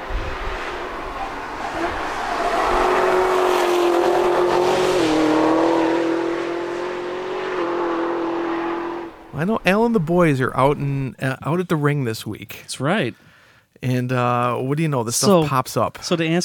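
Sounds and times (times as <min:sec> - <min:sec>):
camouflaged Gen 6 Camaro test car engine revving on the Nürburgring racetrack: 0:00.0 - 0:11.0
speech: 0:09.4 - 0:16.4.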